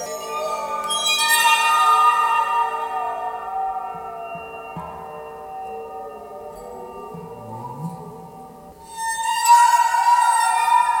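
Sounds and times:
eerie ghost noises of ringing glassy tones: 0:00.0 - 0:10.9
low wavering sounds: 0:02.6 - 0:10.0.

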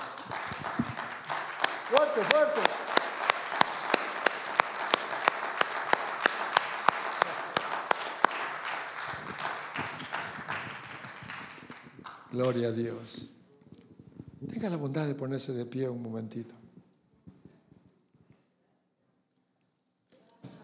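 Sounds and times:
audience applauding: 0:00.0 - 0:13.2
speech: 0:01.9 - 0:02.8, 0:12.4 - 0:13.3, 0:14.6 - 0:16.6.

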